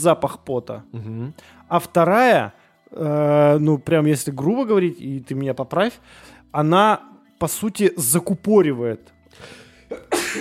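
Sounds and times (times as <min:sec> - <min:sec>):
speech: 0:00.0 - 0:10.3
person sneezing: 0:09.9 - 0:10.3.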